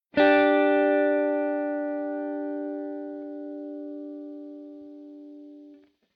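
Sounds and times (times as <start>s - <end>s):
guitar playing D and G together: 0.2s - 5.8s.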